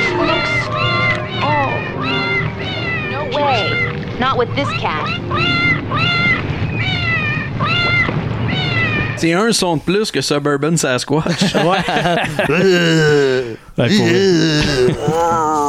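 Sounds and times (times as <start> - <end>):
cat meowing in a film soundtrack: 0.0 - 9.2
constant low hum: 0.0 - 15.6
speech: 4.4 - 6.4, 9.2 - 15.6
laughter: 11.2 - 15.6.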